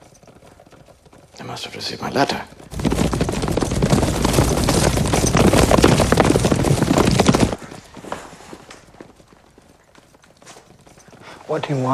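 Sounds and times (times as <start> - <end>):
clatter of hooves of about a dozen horses entering a courtyard: 0.0 - 11.9
speech: 1.4 - 2.6, 11.5 - 11.9.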